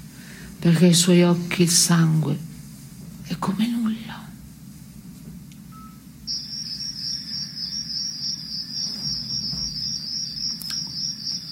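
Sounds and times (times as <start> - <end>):
speech: 0.6 - 2.5, 3.3 - 3.8
crickets chirping: 5.7 - 11.5.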